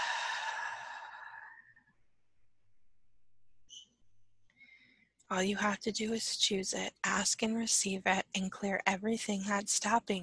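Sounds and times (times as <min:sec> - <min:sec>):
deep breath released as a breathy sigh-like exhale: 0:00.0 - 0:01.7
speech: 0:05.3 - 0:10.2.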